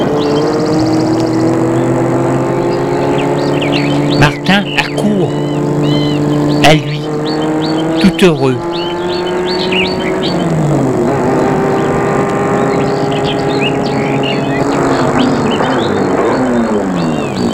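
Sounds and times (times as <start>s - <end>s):
car engine slowing to a stop: 0.0s - 17.5s
small birds chirping and tweeting: 0.0s - 17.5s
speech: 4.5s - 4.7s, 8.2s - 8.8s.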